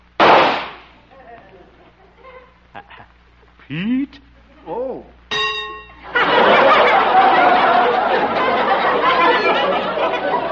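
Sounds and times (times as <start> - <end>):
rifle shot fired at a target during a sharpshooting demonstration: 0.2 - 0.9
laughter: 1.1 - 3.2, 6.0 - 10.5
speech: 3.7 - 5.2.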